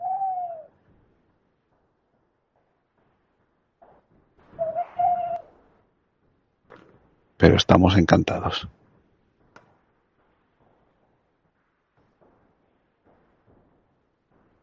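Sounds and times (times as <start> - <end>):
owl hooting at night: 0.0 - 0.7, 4.6 - 5.5
speech: 7.4 - 8.8.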